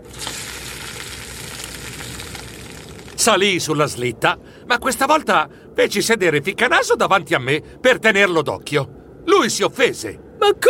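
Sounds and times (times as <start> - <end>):
pancakes frying in a pan: 0.0 - 3.2
speech: 3.2 - 10.6.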